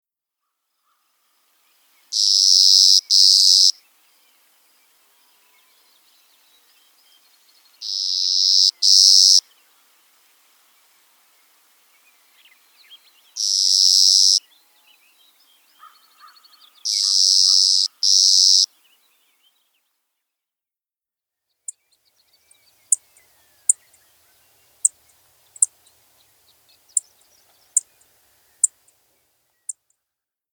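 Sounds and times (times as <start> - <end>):
Clay-colored Sparrow singing: 2.1 - 9.6, 12.0 - 19.9, 21.7 - 30.0.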